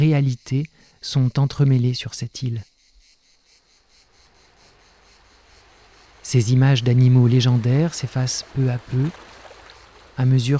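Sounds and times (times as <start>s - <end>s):
speech: 0.0s - 2.7s, 6.3s - 9.3s, 10.2s - 10.5s
chorus of crickets chirping: 0.0s - 10.5s
soft constant rush of noise: 4.0s - 10.5s.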